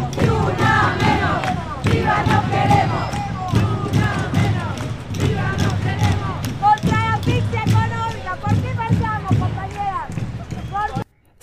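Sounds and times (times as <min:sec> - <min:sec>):
large crowd chanting slogans in unison at a street protest: 0:00.0 - 0:10.1
rhythmic drumming or clapping beats: 0:00.0 - 0:11.4.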